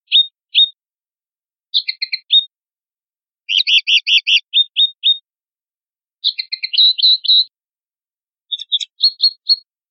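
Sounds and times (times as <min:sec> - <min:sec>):
linnet singing: 0:00.0 - 0:00.8, 0:01.7 - 0:02.6, 0:03.5 - 0:05.3, 0:06.2 - 0:07.6, 0:08.5 - 0:09.7.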